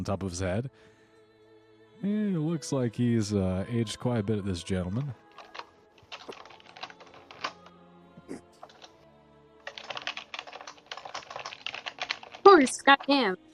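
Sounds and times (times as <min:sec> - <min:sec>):
speech: 0:00.0 - 0:01.0, 0:02.0 - 0:05.2, 0:12.6 - 0:13.5
typing on a clicky computer keyboard: 0:05.3 - 0:07.7, 0:08.6 - 0:09.0, 0:09.6 - 0:13.3.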